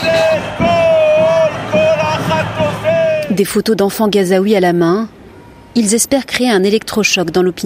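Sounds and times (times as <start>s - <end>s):
crowd of protesters shouting and chanting at an evening street demonstration: 0.0s - 3.6s
speech: 3.4s - 5.2s, 5.8s - 7.6s.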